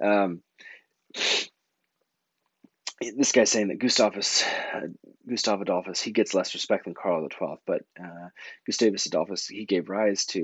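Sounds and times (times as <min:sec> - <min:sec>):
speech: 0:00.0 - 0:00.5, 0:01.1 - 0:01.5, 0:03.0 - 0:10.4
sneeze: 0:01.2 - 0:01.5.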